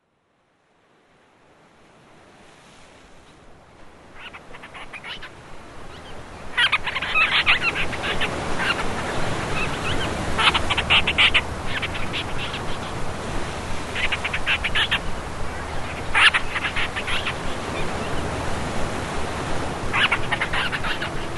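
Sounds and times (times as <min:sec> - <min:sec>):
Painho bird calling on Graciosa in Madeira and the Azores: 0:04.2 - 0:21.3.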